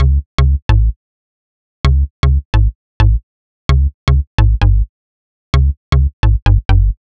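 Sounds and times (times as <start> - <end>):
FM bass loop at 130 bpm: 0.0 - 1.0, 1.8 - 4.9, 5.6 - 7.0.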